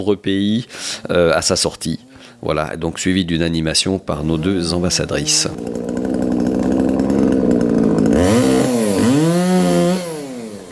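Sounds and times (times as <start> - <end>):
speech: 0.0 - 6.7
chainsaw running: 4.2 - 10.7.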